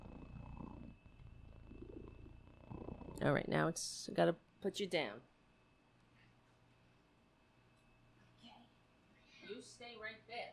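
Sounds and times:
cat purring with a low rumbling vibration: 0.0 - 4.3
speech: 3.2 - 5.3, 9.7 - 10.5.

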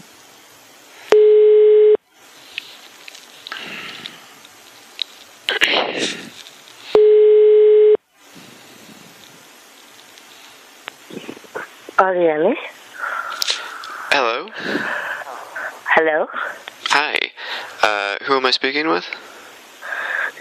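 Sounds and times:
faint hissing phone line noise: 0.0 - 1.5, 2.1 - 7.1, 8.1 - 20.3
electronic telephone ringback tones over a phone line: 1.1 - 2.0, 7.0 - 8.0
speech: 12.0 - 12.7, 16.0 - 16.6, 18.2 - 19.2.

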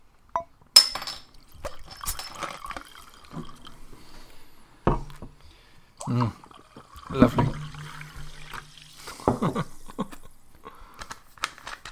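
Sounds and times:
glass clinking: 0.4 - 3.9, 7.0 - 9.8
wine splashing and trickling into a glass: 1.3 - 5.2, 6.0 - 10.1
speech: 6.1 - 6.4.

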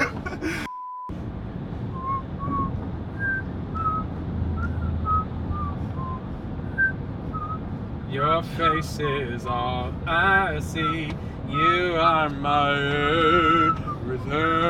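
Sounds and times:
steady low rumble of noise: 0.0 - 14.6
man whistling a wandering thin melody: 1.9 - 7.7, 10.7 - 11.8, 13.3 - 14.4
speech: 8.1 - 14.6.

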